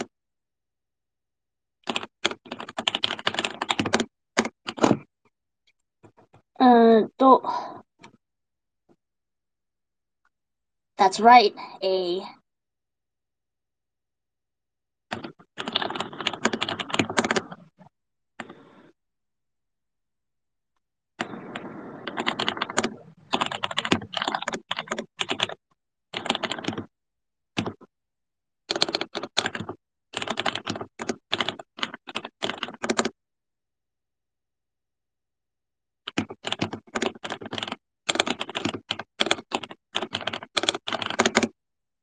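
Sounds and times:
typing on a computer keyboard: 0:01.8 - 0:05.1, 0:15.1 - 0:17.8, 0:21.2 - 0:26.9, 0:27.6 - 0:27.9, 0:28.7 - 0:33.2, 0:36.0 - 0:41.6
speech: 0:06.6 - 0:07.7, 0:11.0 - 0:12.4.

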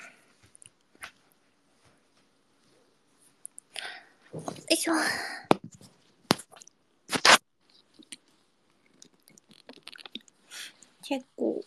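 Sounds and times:
speech: 0:04.3 - 0:05.5, 0:11.1 - 0:11.6
person swallowing while drinking water: 0:08.9 - 0:10.4.

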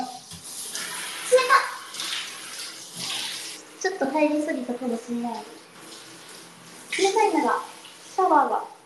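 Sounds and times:
shower water running in a tiled bathroom: 0:00.0 - 0:08.8
speech: 0:03.9 - 0:05.6, 0:07.0 - 0:08.7.

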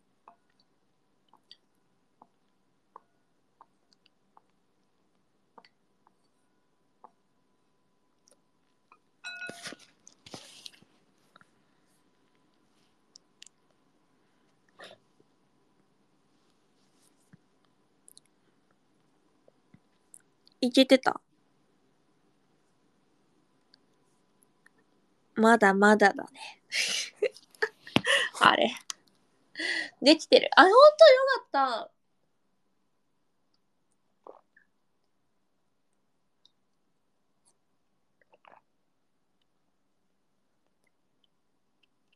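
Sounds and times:
speech: 0:20.6 - 0:21.2, 0:25.4 - 0:27.2, 0:28.4 - 0:28.9, 0:29.6 - 0:32.0
wet mouth clicks: 0:34.2 - 0:34.7, 0:38.2 - 0:38.7.

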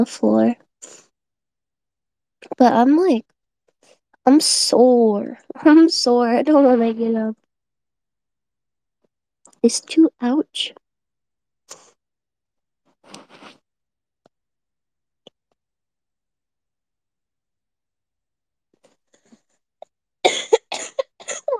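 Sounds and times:
speech: 0:00.0 - 0:01.0, 0:02.5 - 0:03.3, 0:04.2 - 0:07.4, 0:09.6 - 0:10.8
painful harsh coughs: 0:20.3 - 0:21.5.

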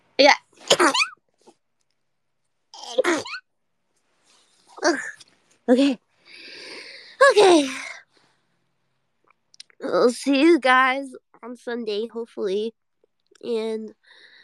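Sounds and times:
speech: 0:00.2 - 0:01.1, 0:05.7 - 0:06.0, 0:07.4 - 0:07.8, 0:10.1 - 0:12.8, 0:13.4 - 0:14.3
sneeze: 0:00.6 - 0:01.2.

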